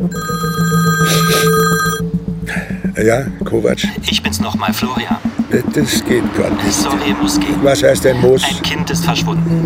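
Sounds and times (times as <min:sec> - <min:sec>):
mobile phone ringing with a bright electronic ringtone: 0:00.1 - 0:02.0
speech: 0:03.0 - 0:09.6.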